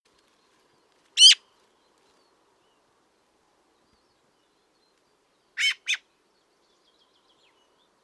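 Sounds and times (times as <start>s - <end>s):
Eurasian magpie Pica pica giving harsh rasping calls: 1.2s - 1.4s, 5.6s - 6.0s.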